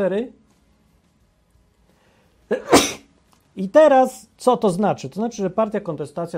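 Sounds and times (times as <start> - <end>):
speech: 0.0 - 0.4, 2.5 - 3.0, 3.6 - 6.3
single deliberate human sneeze made on cue: 2.5 - 3.1.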